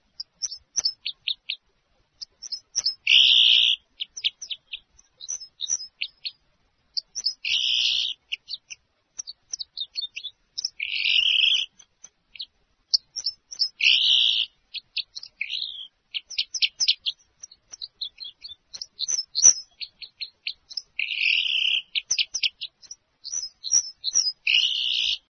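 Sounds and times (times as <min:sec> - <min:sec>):
red crossbill calling: 0:00.0 - 0:01.6, 0:02.2 - 0:25.2.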